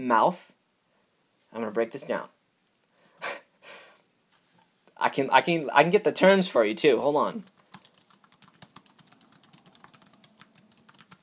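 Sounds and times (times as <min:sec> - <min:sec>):
speech: 0:00.0 - 0:00.6, 0:01.5 - 0:02.4, 0:05.0 - 0:07.5
typing on a computer keyboard: 0:07.4 - 0:11.2.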